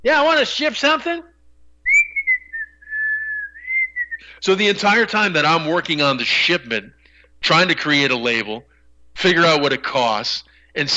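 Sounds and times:
speech: 0:00.0 - 0:01.3, 0:04.4 - 0:10.9
person whistling a single sustained wavering tone: 0:01.9 - 0:04.4.

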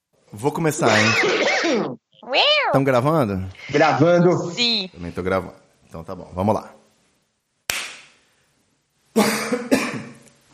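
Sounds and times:
speech: 0:00.3 - 0:06.8
sharp clap: 0:07.7 - 0:08.2
person coughing harshly close to the microphone: 0:09.2 - 0:10.2.

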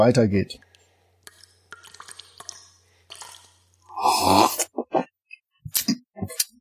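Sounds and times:
speech: 0:00.0 - 0:00.7, 0:04.2 - 0:04.6
scooping water from a lake: 0:01.2 - 0:03.9
gulping and swallowing lake water: 0:01.2 - 0:05.1.

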